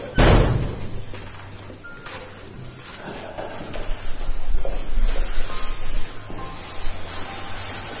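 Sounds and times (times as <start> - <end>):
heavy metal door of a gas chamber slamming shut: 0.0 - 1.2
faint shuffling: 1.0 - 7.9.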